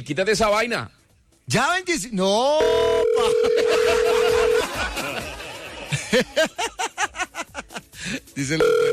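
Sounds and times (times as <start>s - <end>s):
speech: 0.0s - 8.9s
electronic phone ringback tone of an unanswered call: 2.6s - 4.8s, 8.6s - 8.9s
rhythmic pulsing laughter: 3.0s - 8.4s.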